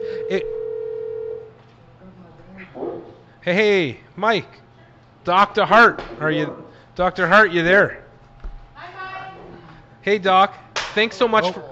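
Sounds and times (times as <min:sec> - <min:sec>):
phone line ringback tone: 0:00.0 - 0:01.5
speech: 0:00.3 - 0:00.6, 0:03.4 - 0:04.6, 0:05.2 - 0:08.0, 0:10.0 - 0:11.7.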